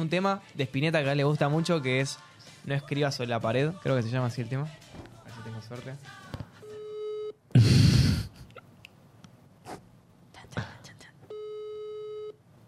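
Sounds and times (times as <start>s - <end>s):
speech: 0.0s - 6.3s
steady electronic phone tone beeping: 6.6s - 7.4s, 11.3s - 12.4s.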